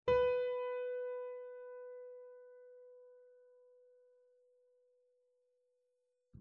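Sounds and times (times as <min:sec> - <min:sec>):
piano note C4 on Pianoteq: 0:00.1 - 0:02.7.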